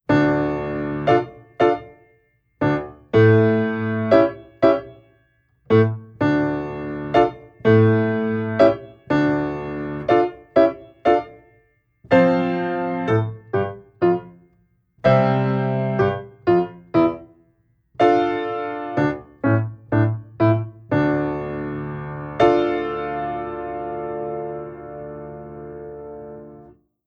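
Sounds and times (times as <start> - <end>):
piano exercises played with sustain pedal held down: 0.1 - 17.4, 18.0 - 26.8.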